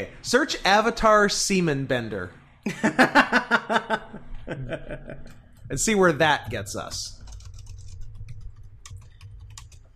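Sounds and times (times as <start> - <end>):
speech: 0.0 - 7.2
low hum: 0.0 - 9.9
laughter: 2.7 - 5.4
typing on a computer keyboard: 6.8 - 9.9.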